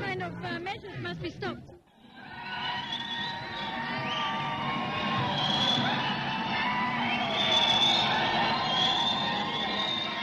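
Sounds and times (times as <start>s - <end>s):
speech: 0.2s - 2.4s
protest crowd of gay men and lesbians screaming under marble columns: 2.0s - 10.2s
shouts and whoops: 2.1s - 10.2s.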